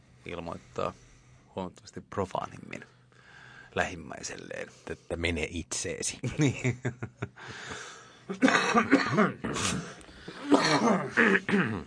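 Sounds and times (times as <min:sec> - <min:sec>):
speech: 0:00.2 - 0:03.0, 0:03.7 - 0:10.0, 0:10.6 - 0:11.8
harsh raspy coughing fit: 0:08.3 - 0:11.8.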